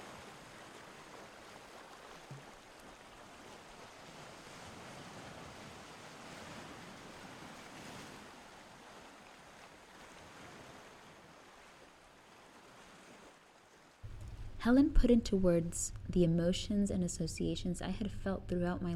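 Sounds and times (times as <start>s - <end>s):
ocean surf breaking on the shore: 0.0s - 14.6s
speech: 14.6s - 18.9s.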